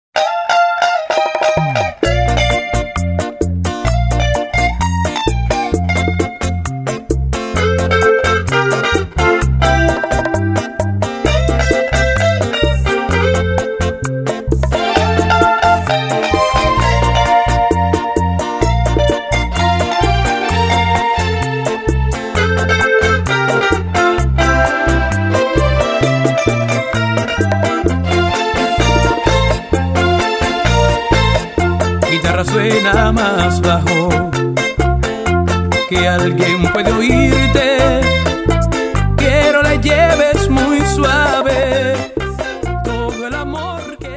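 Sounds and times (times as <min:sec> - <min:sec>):
guitar playing with a lower sound: 0:00.2 - 0:44.1.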